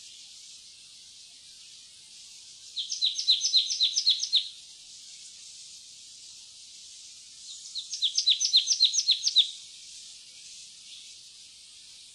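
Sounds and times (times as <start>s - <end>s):
marsh tit call series of quick sharp high chirps in doubled notes: 2.8s - 4.5s, 7.5s - 9.6s.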